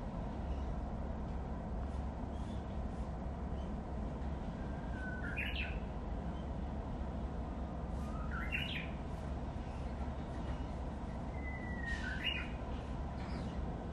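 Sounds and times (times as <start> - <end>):
constant low-pitched background hum: 0.0 - 13.9
Japanese bush warbler singing: 4.8 - 5.8, 8.0 - 9.0, 11.3 - 12.6.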